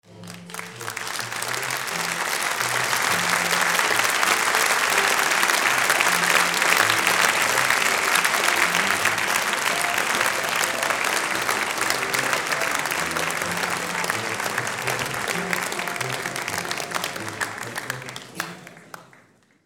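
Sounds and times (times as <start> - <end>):
applause at a theatre premiere: 0.0 - 19.6.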